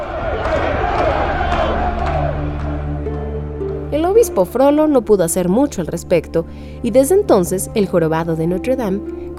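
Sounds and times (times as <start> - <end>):
scattered clapping: 0.0 - 3.2
large crowd cheering and shouting: 0.0 - 3.7
speech: 4.2 - 9.3.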